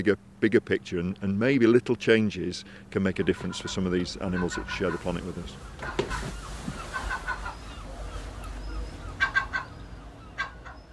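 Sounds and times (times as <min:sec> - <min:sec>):
speech: 0:00.0 - 0:06.4
low outdoor rumble: 0:00.0 - 0:10.9
herring gulls squawking: 0:02.9 - 0:10.9.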